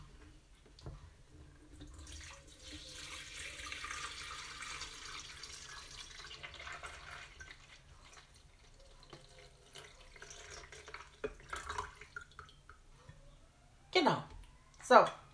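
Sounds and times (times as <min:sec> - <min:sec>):
water pouring from a teapot into an electric kettle: 0:01.7 - 0:12.8
speech: 0:14.0 - 0:14.3, 0:14.9 - 0:15.2.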